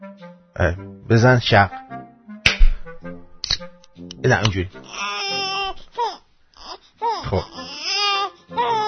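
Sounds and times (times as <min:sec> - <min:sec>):
speech: 0:00.6 - 0:01.8, 0:04.2 - 0:05.1, 0:07.3 - 0:07.6
voice imitating a newborn baby crying: 0:04.8 - 0:08.8.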